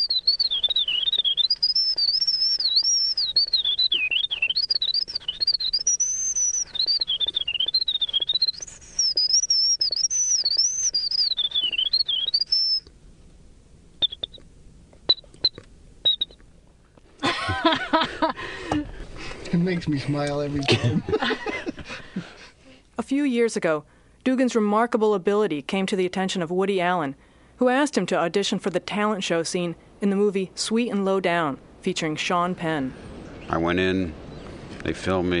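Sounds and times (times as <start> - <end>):
man whistling imitation of winter wren song: 0.0 - 12.9, 14.0 - 14.4, 15.1 - 16.4
short chirps: 0.0 - 12.9, 14.0 - 14.4
laughter: 17.2 - 19.0, 19.9 - 22.5
speech: 19.7 - 21.5, 23.1 - 34.2, 34.8 - 35.3.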